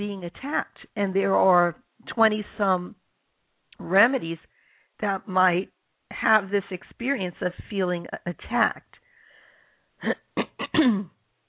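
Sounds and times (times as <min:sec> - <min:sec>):
speech: 0:00.0 - 0:03.0, 0:03.8 - 0:08.9, 0:10.0 - 0:11.2
throat clearing: 0:10.0 - 0:11.2.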